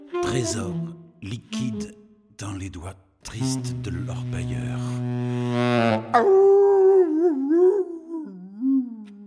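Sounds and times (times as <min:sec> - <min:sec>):
speech: 0:00.3 - 0:06.6
dogs howling: 0:06.1 - 0:09.0.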